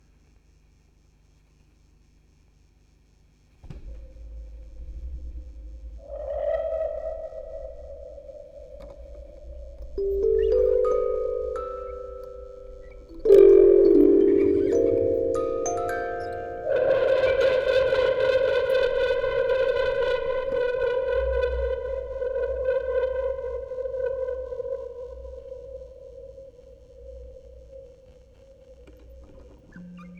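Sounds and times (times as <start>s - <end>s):
tape recording: 3.6s - 30.1s
vocoder: 3.7s - 30.1s
music box quartet: 9.8s - 17.7s.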